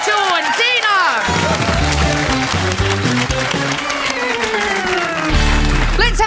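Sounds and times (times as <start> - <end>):
audience applause: 0.0 - 6.2
bright stepping music cue: 1.7 - 6.0.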